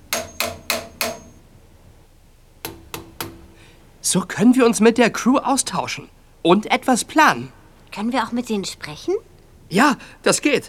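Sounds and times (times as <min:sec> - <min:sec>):
knocking on metal pipes in a ship's storeroom: 0:00.0 - 0:01.4, 0:02.6 - 0:03.7
speech: 0:04.0 - 0:10.6.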